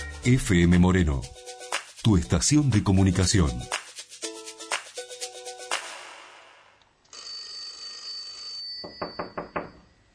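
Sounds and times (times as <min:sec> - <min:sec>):
speech: 0:00.2 - 0:01.3, 0:02.0 - 0:03.8
telephone ringing: 0:07.1 - 0:10.1.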